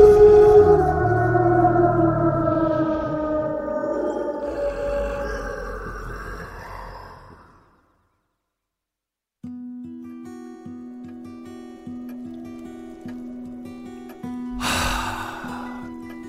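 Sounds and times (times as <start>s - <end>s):
terrifying creature roar with deep moaning bellow: 0.0s - 7.9s, 14.6s - 15.9s.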